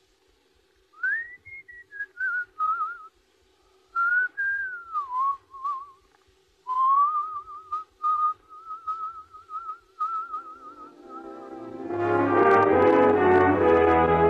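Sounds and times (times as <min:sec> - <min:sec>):
faint steady hum: 0:00.0 - 0:14.2
person whistling a melodic tune: 0:01.0 - 0:03.1, 0:03.9 - 0:06.0, 0:06.7 - 0:11.7.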